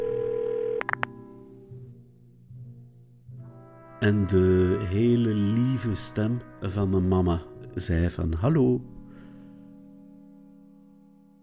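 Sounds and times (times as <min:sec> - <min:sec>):
telephone ringing tone on a call: 0:00.0 - 0:01.2
speech: 0:04.0 - 0:09.0.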